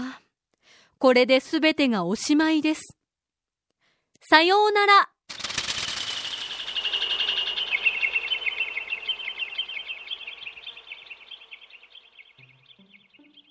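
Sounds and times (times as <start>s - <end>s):
speech: 1.0s - 3.0s, 4.2s - 5.1s
flock of Japanese bush warblers chirping and trilling: 6.0s - 13.4s.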